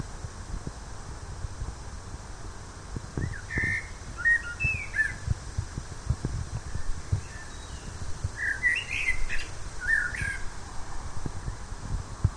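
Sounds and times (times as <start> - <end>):
constant low-pitched background noise: 0.0 - 12.3
Common blackbird Turdus merula singing: 3.2 - 5.2, 6.7 - 10.4.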